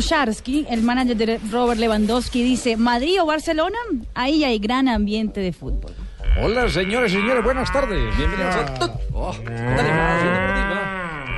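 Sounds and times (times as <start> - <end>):
speech: 0.0 - 10.8
cow mooing: 6.2 - 8.7, 9.4 - 11.3.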